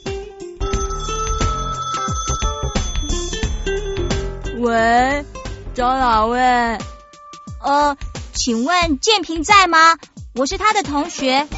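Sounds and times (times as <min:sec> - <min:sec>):
phone ringtone with repeating electronic melody and deep bass: 0:00.0 - 0:04.5
speech: 0:04.6 - 0:06.9, 0:07.7 - 0:11.5.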